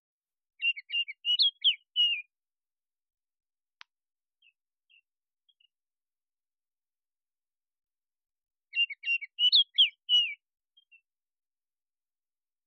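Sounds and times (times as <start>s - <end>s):
Baltimore oriole singing: 0.6s - 2.3s, 8.7s - 11.1s.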